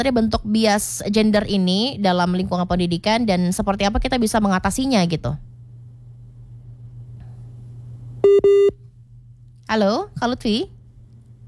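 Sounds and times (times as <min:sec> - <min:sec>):
speech: 0:00.0 - 0:05.5, 0:08.3 - 0:08.8, 0:09.7 - 0:10.8
faint low hum: 0:00.0 - 0:11.4
telephone dialing beeps over a telephone line: 0:08.2 - 0:08.7.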